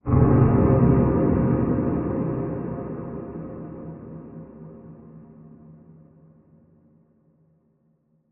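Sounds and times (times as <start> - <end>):
distant dark cinematic impact hit: 0.1 - 5.8.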